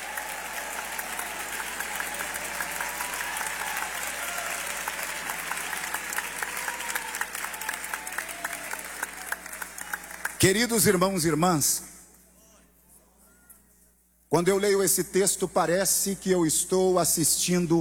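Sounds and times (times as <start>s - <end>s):
large audience clapping in praise: 0.0s - 10.5s
speech: 10.4s - 11.9s, 14.3s - 17.7s.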